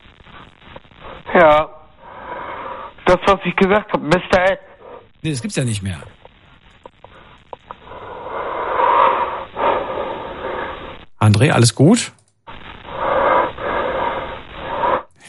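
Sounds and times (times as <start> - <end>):
speech: 1.4 - 1.8, 3.1 - 6.2, 11.3 - 12.2
caller breathing heavily over a tinny phone line: 2.0 - 3.1, 7.0 - 11.0, 12.9 - 15.2.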